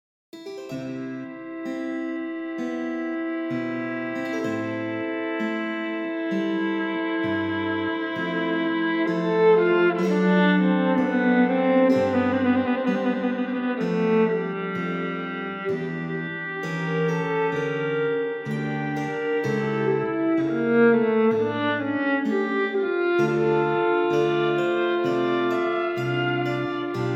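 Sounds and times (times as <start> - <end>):
orchestral suite movement arranged for viola and strings: 0.7 - 27.1.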